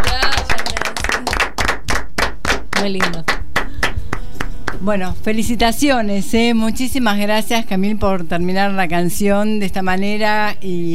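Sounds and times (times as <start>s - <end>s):
audience clapping as a song ends: 0.0s - 4.8s
speech: 2.8s - 3.3s, 4.8s - 10.9s.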